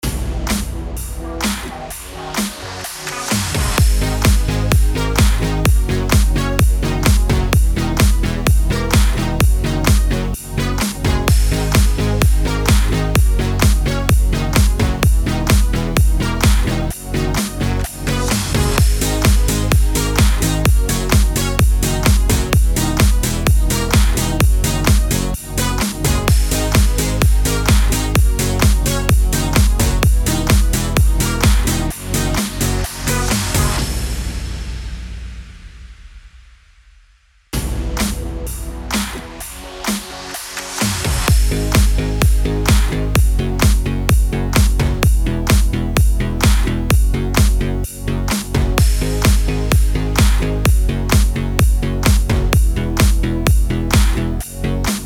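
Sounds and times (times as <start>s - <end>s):
electro music bed in G-sharp minor at 128 BPM: 0.0s - 34.6s, 37.6s - 55.0s.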